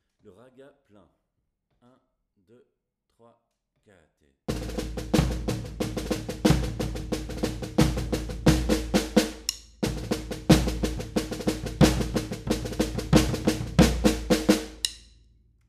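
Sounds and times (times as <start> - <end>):
batucada drumming: 4.5 - 15.0.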